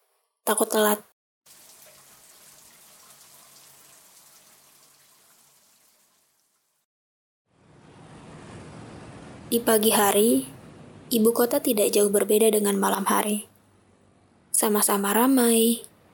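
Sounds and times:
speech: 0.5 - 1.1, 9.5 - 13.5, 14.6 - 15.9
shower water running: 1.5 - 6.9.

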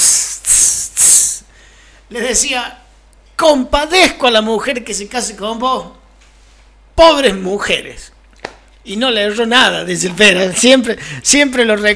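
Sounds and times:
voice imitating boiling water from a kettle hissing on the floor: 0.0 - 1.5
speech: 2.1 - 2.8, 3.4 - 6.0, 7.0 - 8.1, 8.8 - 11.9.

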